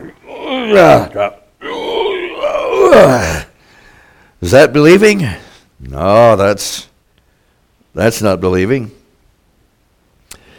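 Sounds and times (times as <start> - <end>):
person imitating groaning: 0.0 - 3.6
speech: 0.6 - 1.4, 4.4 - 6.9, 8.0 - 9.0.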